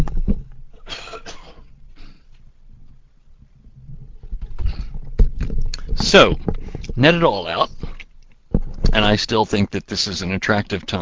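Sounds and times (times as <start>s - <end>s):
person coughing: 0.8s - 2.2s
throat clearing: 0.8s - 2.3s
rustling: 1.6s - 9.5s
person sipping water: 4.5s - 7.0s
speech: 6.1s - 7.8s, 9.0s - 10.9s.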